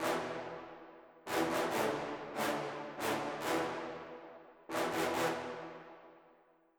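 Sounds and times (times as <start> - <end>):
trombones: 1.3 - 4.0, 4.7 - 5.7.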